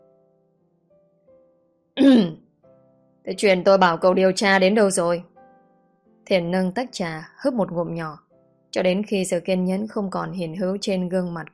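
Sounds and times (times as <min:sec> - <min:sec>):
person clearing throat: 0:02.0 - 0:02.4
speech: 0:03.2 - 0:05.3, 0:06.3 - 0:11.5.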